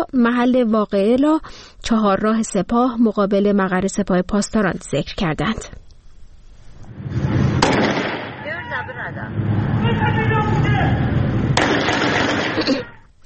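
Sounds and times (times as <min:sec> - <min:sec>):
speech: 0:00.0 - 0:05.8, 0:08.8 - 0:11.1, 0:12.6 - 0:13.0
street noise: 0:05.9 - 0:13.2
handgun shots fired at a car at a roadside crossroads: 0:07.6 - 0:08.4, 0:11.6 - 0:12.6.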